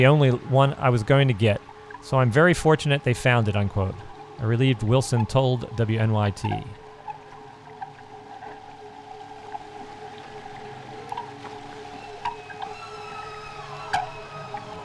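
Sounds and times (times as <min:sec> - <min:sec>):
speech: 0:00.0 - 0:06.8
eerie tonal calls: 0:00.0 - 0:14.8
low watery rumble: 0:00.0 - 0:14.8
clicks and drips: 0:04.8 - 0:12.8.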